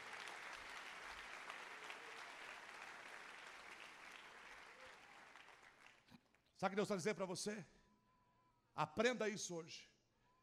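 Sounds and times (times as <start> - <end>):
audience applauding: 0.0 - 6.2
speech: 6.6 - 7.8, 8.8 - 9.9.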